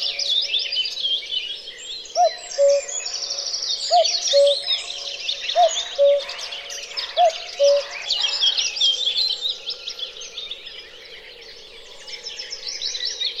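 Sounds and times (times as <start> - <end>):
chorus of twittering songbirds: 0.0 - 13.3
cuckoo giving two-note cu-coo call: 2.2 - 8.6.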